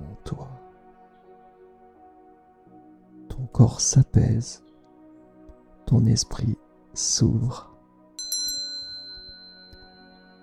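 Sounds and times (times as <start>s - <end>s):
speech: 0.3s - 0.5s, 3.5s - 4.6s, 5.9s - 7.7s
small Tibetan bell struck and ringing: 8.2s - 10.4s.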